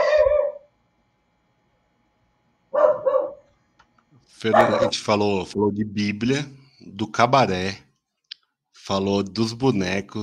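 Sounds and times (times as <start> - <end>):
dog barking: 0.0 - 0.7, 2.7 - 3.5, 4.5 - 5.0
speech: 4.4 - 7.8, 8.8 - 10.2.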